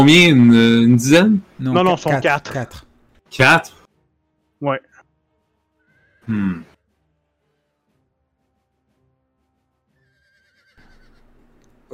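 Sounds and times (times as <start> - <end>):
speech: 0.0 - 3.8, 4.6 - 4.9, 6.3 - 6.7
horse neighing as its rider halts it: 10.0 - 11.4.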